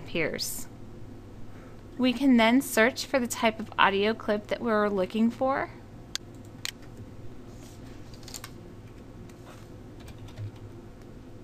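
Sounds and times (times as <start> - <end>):
speech: 0.1 - 0.7, 2.0 - 5.8
typing on a computer keyboard entering a search term: 10.0 - 10.7.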